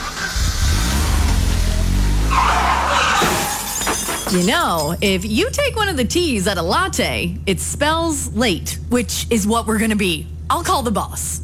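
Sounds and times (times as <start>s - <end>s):
car engine revving: 0.0s - 3.2s
car tires screeching in a skid: 0.0s - 4.2s
speech: 4.3s - 11.4s.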